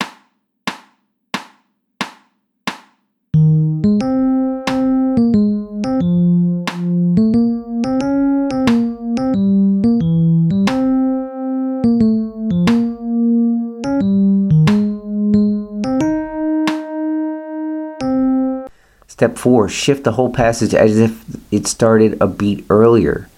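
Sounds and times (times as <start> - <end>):
metronome clicks on the second beat: 3.4 - 17.3
melodic line in triple time with sustained notes: 3.4 - 18.7
speech: 19.2 - 23.3.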